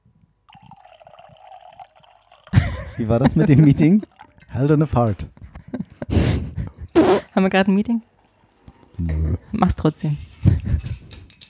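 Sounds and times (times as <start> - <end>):
drink pouring into a glass: 0.4 - 5.1
laughter: 2.6 - 4.0, 5.4 - 7.0
speech: 3.0 - 5.4, 7.4 - 8.1, 9.0 - 10.3.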